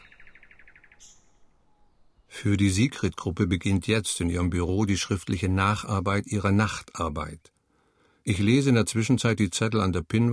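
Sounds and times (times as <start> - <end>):
nightingales singing at night: 0.0 - 2.9
speech: 2.4 - 7.5, 8.2 - 10.3.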